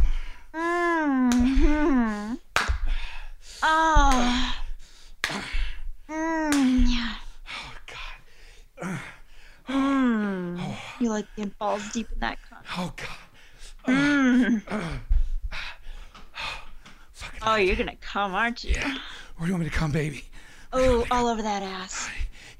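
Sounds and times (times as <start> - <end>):
person moaning and gasping: 0.0 - 2.4, 3.6 - 8.0, 8.8 - 13.1, 13.8 - 15.7, 18.7 - 19.3
sharp slaps on skin: 1.3 - 1.7, 2.5 - 3.0, 4.0 - 4.5, 5.2 - 5.7, 6.5 - 7.0
speech: 11.2 - 13.2, 13.9 - 15.1, 17.5 - 22.2.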